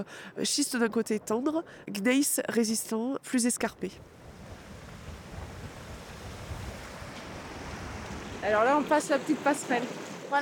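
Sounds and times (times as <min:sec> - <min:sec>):
speech: 0:00.0 - 0:04.2, 0:08.4 - 0:10.4
mountain stream rushing through a glacial valley: 0:04.1 - 0:10.4.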